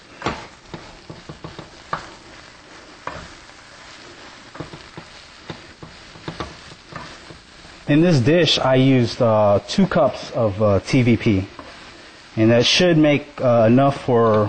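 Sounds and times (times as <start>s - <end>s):
stirring turbinado sugar and freshly ground black pepper: 0.5s - 8.0s
speech: 7.9s - 11.6s, 12.4s - 14.4s.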